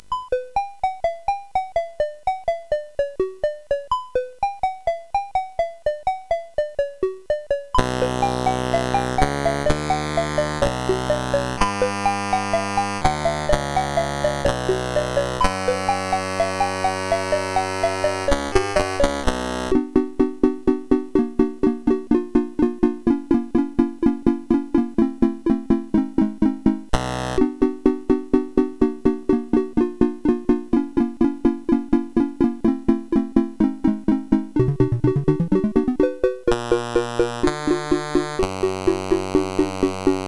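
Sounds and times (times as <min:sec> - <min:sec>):
chiptune music on a SID 8580R5 sound chip: 0:00.1 - 0:40.2.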